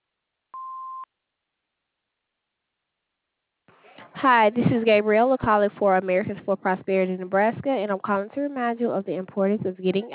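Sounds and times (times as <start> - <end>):
electronic beep: 0.6 - 1.1
speech: 4.2 - 10.1.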